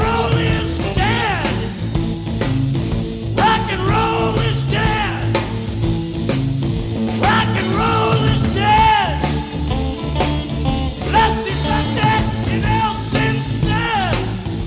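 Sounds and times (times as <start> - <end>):
person singing a rock vocal line: 0.0 - 1.8, 3.4 - 5.4, 7.2 - 10.0, 11.0 - 14.6
rock bass: 0.0 - 14.6
rock guitar: 0.0 - 14.6
rock rhythm section: 0.0 - 14.6.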